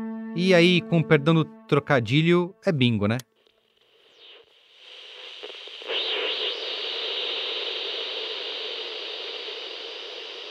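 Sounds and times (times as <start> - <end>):
speech: 0.4 - 3.3
crackling radio static interference: 3.3 - 10.4.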